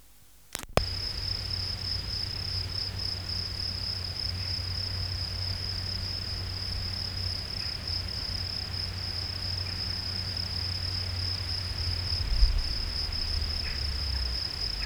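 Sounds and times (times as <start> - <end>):
sharp clicks: 0.5 - 0.9
field cricket Gryllus campestris song high steady trill: 0.6 - 14.8.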